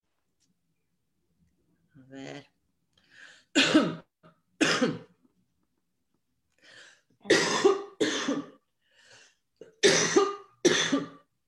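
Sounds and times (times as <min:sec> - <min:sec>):
speech: 0:02.0 - 0:02.5, 0:03.5 - 0:04.0
harsh coughing fit: 0:03.5 - 0:05.2, 0:07.2 - 0:08.6, 0:09.6 - 0:11.3.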